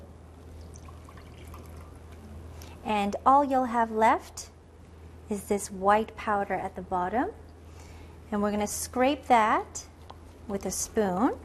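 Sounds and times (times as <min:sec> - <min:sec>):
water poured off settled starch in a bowl: 0:00.6 - 0:02.3
speech: 0:02.8 - 0:04.5, 0:05.3 - 0:07.4, 0:08.3 - 0:09.9, 0:10.5 - 0:11.4.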